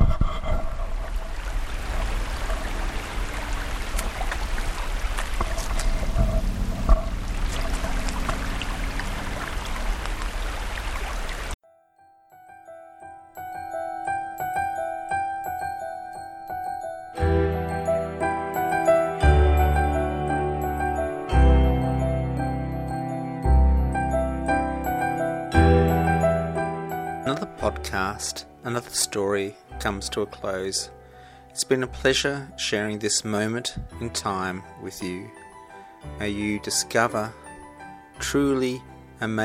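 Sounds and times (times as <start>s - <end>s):
creek water rushing and burbling: 1.0s - 11.6s
gentle tonal music: 5.5s - 10.4s, 11.6s - 39.4s
speech: 27.8s - 31.0s, 31.6s - 35.4s, 36.0s - 37.4s, 38.2s - 39.4s.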